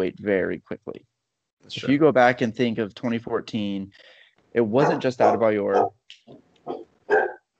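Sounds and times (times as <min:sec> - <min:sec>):
speech: 0:00.0 - 0:07.3
big dog barking: 0:04.8 - 0:06.0, 0:06.7 - 0:07.5.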